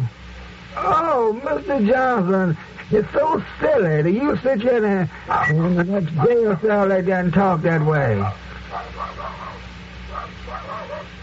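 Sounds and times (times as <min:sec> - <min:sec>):
steady hiss and low hum of an old recording: 0:00.0 - 0:11.2
speech: 0:00.8 - 0:08.9
dog barking outside a cell: 0:05.3 - 0:06.6, 0:08.2 - 0:11.2.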